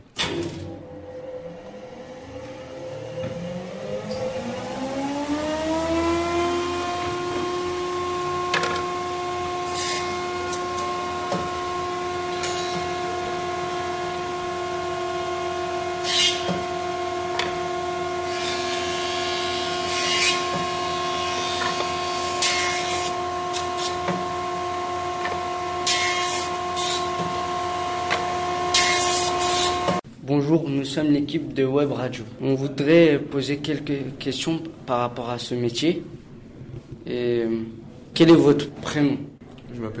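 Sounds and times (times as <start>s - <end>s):
jointer planer machine spinning up and humming: 0.0s - 30.0s
bursts of cutting noise as wood passes over the blades: 0.8s - 30.0s
speech: 30.7s - 36.1s, 37.1s - 39.3s.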